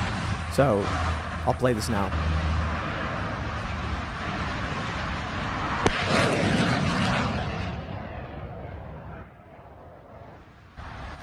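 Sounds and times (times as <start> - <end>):
heavy rumbling burst of air defense guns firing: 0.0 - 11.2
steady outdoor roar: 0.0 - 11.2
speech: 0.6 - 2.4
sharp crack of air defense guns firing at drones: 5.8 - 7.5.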